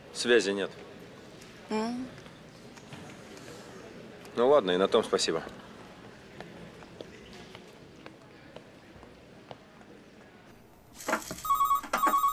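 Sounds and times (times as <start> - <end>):
low noise: 0.0 - 12.3
speech: 0.2 - 0.9, 1.7 - 2.2, 4.4 - 5.6
telephone ringing as a call is placed to a workplace: 10.9 - 12.3.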